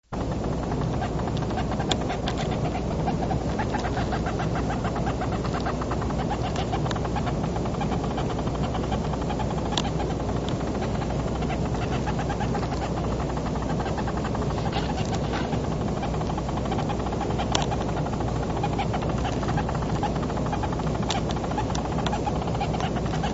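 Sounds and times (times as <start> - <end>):
Texas leafcutting ant: 0.1 - 23.3.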